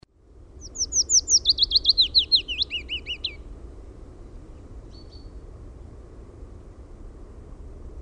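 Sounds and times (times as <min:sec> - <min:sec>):
soft background hum: 0:00.0 - 0:08.0
willow warbler singing: 0:00.6 - 0:03.5, 0:04.8 - 0:05.4.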